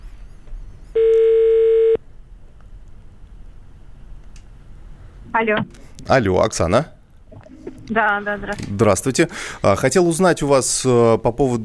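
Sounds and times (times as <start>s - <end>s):
ringback tone of an outgoing telephone call to an office: 1.0s - 2.0s
speech: 5.4s - 7.0s, 7.9s - 11.6s.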